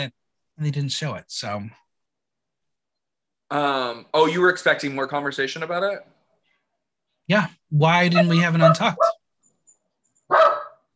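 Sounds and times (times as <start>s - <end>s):
speech: 0.0s - 1.8s, 3.5s - 6.1s, 7.3s - 9.1s
dog barking: 8.1s - 9.2s, 10.3s - 10.9s.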